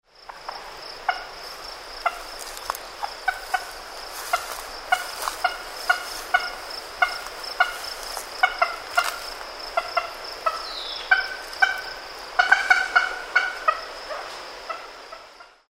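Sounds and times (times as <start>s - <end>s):
wild turkey: 0.2s - 15.6s.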